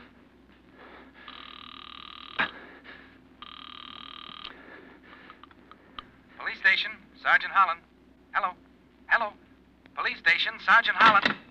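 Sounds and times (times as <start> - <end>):
telephone ringing over the line during a call to the police: 1.2 - 2.6, 3.4 - 4.6
speech: 6.8 - 8.6, 10.3 - 11.4.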